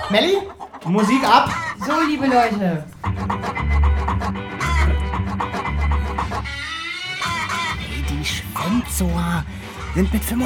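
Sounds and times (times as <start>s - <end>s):
laughter: 0.0s - 10.4s
roosters clucking: 0.0s - 10.4s
steady rhythmic low thumping: 0.0s - 10.4s
speech: 0.1s - 4.4s, 8.2s - 10.4s.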